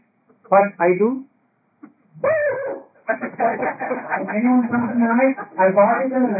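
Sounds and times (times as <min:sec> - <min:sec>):
speech: 0:00.5 - 0:01.3, 0:02.2 - 0:06.3
person imitating a dog yipping and whining: 0:02.2 - 0:03.0
laughter: 0:02.2 - 0:06.3.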